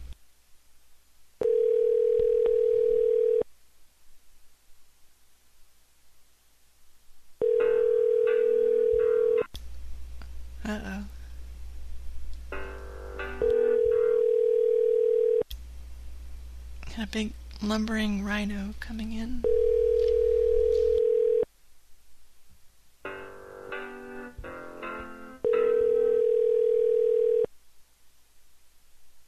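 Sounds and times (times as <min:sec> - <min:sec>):
static hiss and crackling on a telephone line: 0:00.0 - 0:29.2
telephone line tones after a number is dialled: 0:01.4 - 0:03.4, 0:07.4 - 0:09.5, 0:13.4 - 0:15.4, 0:19.4 - 0:21.4, 0:25.4 - 0:27.5
speech: 0:17.1 - 0:19.6.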